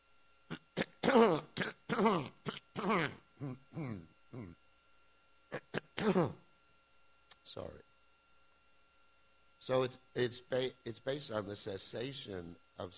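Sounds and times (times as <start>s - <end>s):
harsh throaty raspy coughing: 0.5s - 3.2s, 5.5s - 6.4s
speech: 1.2s - 4.1s, 6.1s - 6.4s, 7.5s - 7.8s, 9.6s - 12.9s.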